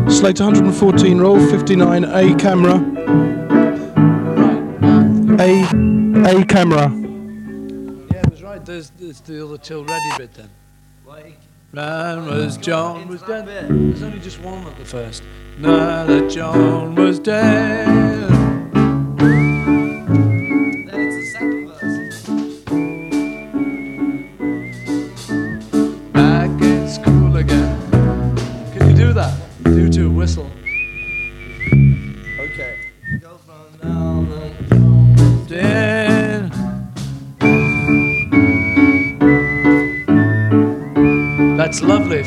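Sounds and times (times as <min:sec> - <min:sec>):
full band accompaniment with rhythmic instruments: 0:00.0 - 0:08.4, 0:16.2 - 0:30.6, 0:34.0 - 0:42.2
speech: 0:00.1 - 0:03.6, 0:05.4 - 0:07.0, 0:08.7 - 0:18.4
clear high whistled melody: 0:05.4 - 0:07.8, 0:19.2 - 0:26.4, 0:30.7 - 0:33.2, 0:37.4 - 0:42.2.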